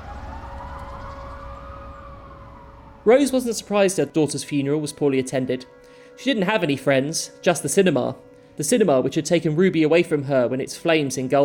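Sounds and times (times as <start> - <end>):
low rumbling background: 0.0 - 4.4
emergency vehicle sirens: 0.0 - 11.4
speech: 3.0 - 11.4.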